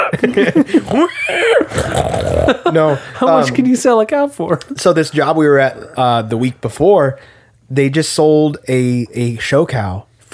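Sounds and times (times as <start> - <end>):
laughter: 0.0 - 3.6
speech: 0.1 - 10.3
person imitating a pig with squeals and grunts: 0.8 - 2.6.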